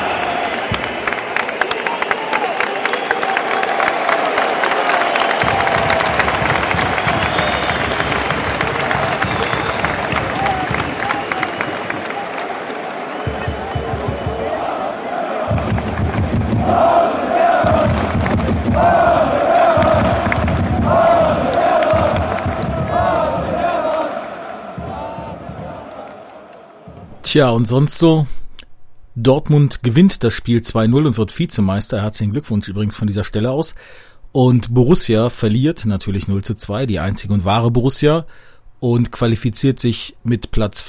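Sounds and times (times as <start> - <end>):
football stadium crowd roaring and cheering at a player substitution: 0.0 - 28.1
speech: 27.3 - 28.4, 29.2 - 40.8.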